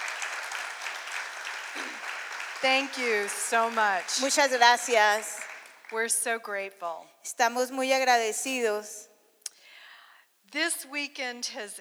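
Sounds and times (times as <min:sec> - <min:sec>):
audience applause at a church gathering: 0:00.0 - 0:06.0
speech: 0:01.8 - 0:09.1, 0:10.5 - 0:11.8.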